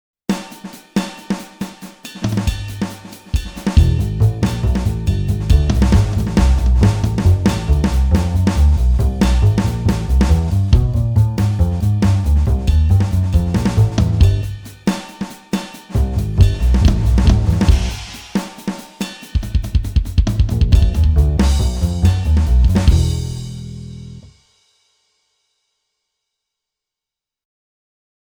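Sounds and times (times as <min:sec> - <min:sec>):
drums on a Roland XP-80: 0:00.3 - 0:25.1
bass on a Roland XP-80: 0:03.7 - 0:14.8, 0:15.9 - 0:18.2, 0:19.7 - 0:24.4.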